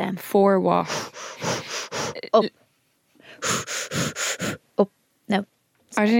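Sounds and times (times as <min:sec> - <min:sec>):
speech: 0:00.0 - 0:01.6, 0:02.2 - 0:02.6, 0:03.4 - 0:06.1
person imitating heavy gasping breaths of going into a cold plunge pool: 0:00.8 - 0:02.3, 0:03.2 - 0:04.7.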